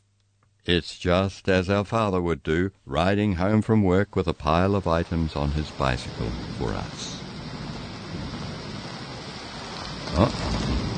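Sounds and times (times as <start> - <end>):
speech: 0.7 - 7.2, 10.2 - 10.7
steady rain from a summer thunderstorm: 4.2 - 10.9
low rumble of thunder: 4.4 - 10.9.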